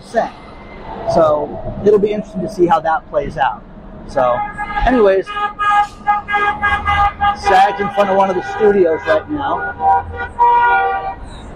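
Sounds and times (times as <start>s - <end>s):
low rumble of traffic: 0.0s - 11.5s
street noise: 0.0s - 11.5s
speech: 0.1s - 0.4s, 1.0s - 11.5s
car horn honking at street protest: 4.2s - 11.5s.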